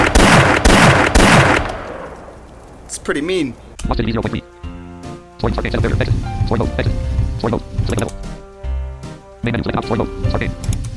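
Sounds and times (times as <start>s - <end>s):
red-dot shotgun blasts in a video game: 0.0s - 2.5s
speech: 3.1s - 4.7s, 5.4s - 8.4s, 9.4s - 10.8s.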